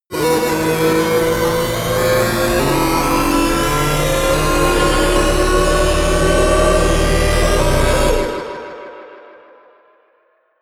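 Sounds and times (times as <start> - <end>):
synthesized racing car: 0.1 - 8.6.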